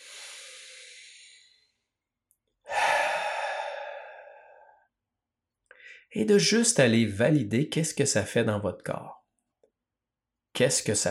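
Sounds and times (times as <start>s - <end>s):
deep breaths during a guided breathing exercise: 0.0s - 1.8s, 2.7s - 4.9s, 5.7s - 6.1s
speech: 6.1s - 9.2s, 10.6s - 11.0s.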